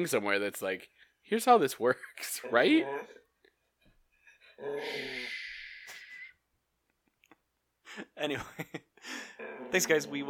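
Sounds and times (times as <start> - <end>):
speech: 0.0 - 3.2, 4.6 - 5.4, 8.0 - 10.2
dog growling and yipping: 9.4 - 10.1.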